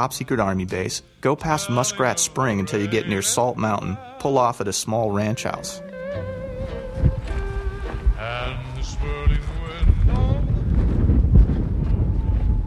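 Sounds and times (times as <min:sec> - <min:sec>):
speech: 0:00.0 - 0:07.1
strong wind gusts buffeting the microphone on an open dusty hillside: 0:06.2 - 0:12.6.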